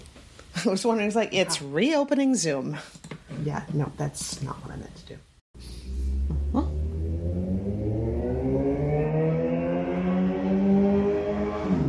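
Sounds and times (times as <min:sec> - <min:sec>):
speech: 0:00.6 - 0:05.3
car passing by outside accelerating: 0:05.8 - 0:11.8.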